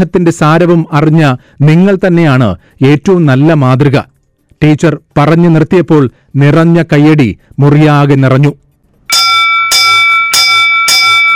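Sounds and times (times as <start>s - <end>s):
speech: 0.0s - 8.6s
school bell ringing the first bell of a new academic year: 9.1s - 11.3s.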